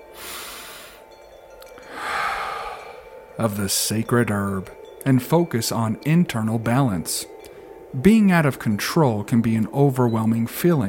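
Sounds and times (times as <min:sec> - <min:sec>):
deep breath in and out during a meditative reading: 0:00.1 - 0:01.1, 0:01.8 - 0:03.3
speech: 0:03.4 - 0:07.3, 0:07.9 - 0:10.8.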